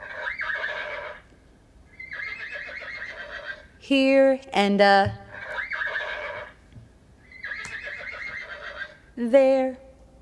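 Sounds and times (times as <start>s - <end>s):
horse neighing played from a children's music app: 0.0s - 1.2s, 1.9s - 3.7s, 5.3s - 6.6s, 7.2s - 9.0s
speech: 3.9s - 5.2s, 9.2s - 9.8s.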